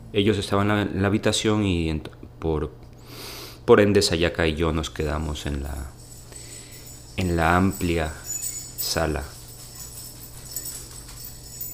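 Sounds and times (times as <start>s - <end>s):
quiet room hum: 0.0s - 11.7s
speech: 0.1s - 6.0s, 7.2s - 8.2s, 8.8s - 9.3s
small dog collar bell jingling: 4.3s - 11.7s.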